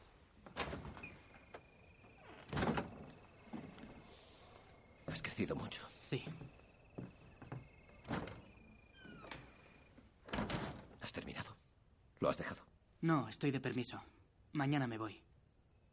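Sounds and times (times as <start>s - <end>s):
door being opened: 0.5s - 5.2s, 6.5s - 11.1s
speech: 5.5s - 6.6s, 12.2s - 15.3s.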